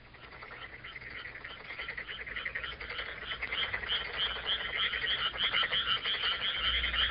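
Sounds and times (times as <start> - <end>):
dense chorus of frogs croaking at night: 0.0 - 7.0
faint low rumble: 0.0 - 7.0.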